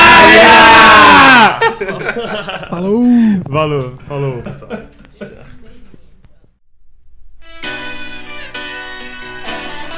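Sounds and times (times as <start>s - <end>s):
group of people yelling together: 0.0s - 1.6s
laughter: 1.3s - 3.0s, 4.2s - 5.7s
speech: 2.8s - 5.3s.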